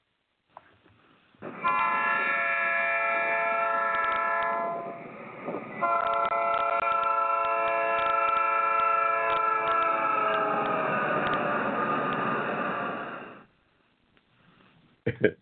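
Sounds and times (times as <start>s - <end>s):
low rumble of the passing train: 1.4s - 13.5s
train horn blasts from a westbound train at a platform: 1.5s - 5.0s, 5.8s - 11.4s.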